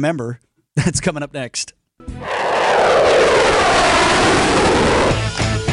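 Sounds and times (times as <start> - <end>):
speech: 0.0 - 4.4
fighter jet roaring overhead: 2.1 - 5.6.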